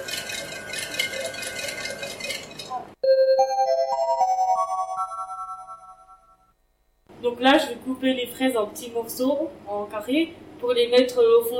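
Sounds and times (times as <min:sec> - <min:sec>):
kitchen machine blending mascarpone, sugar and vanilla sugar in a bowl: 0:00.0 - 0:03.0
electronic chime tones stepping upward in pitch: 0:03.0 - 0:06.6
speech: 0:07.4 - 0:11.5.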